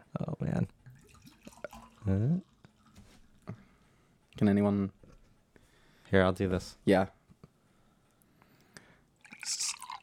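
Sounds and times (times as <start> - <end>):
cloudy bubbly golden drink being poured into a glass: 1.0 - 2.1, 9.2 - 10.0
small drips and clinks: 1.0 - 3.0, 9.2 - 10.0
speech: 2.1 - 2.5, 4.4 - 5.0, 6.1 - 7.2.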